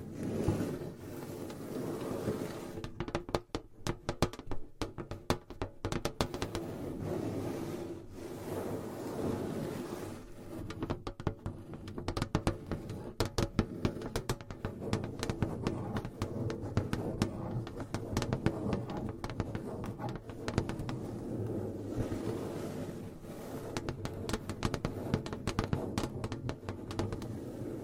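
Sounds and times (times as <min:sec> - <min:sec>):
soft scraping: 0:00.0 - 0:02.9, 0:06.5 - 0:10.9, 0:13.7 - 0:27.8
gentle tapping and scratching: 0:00.0 - 0:27.8.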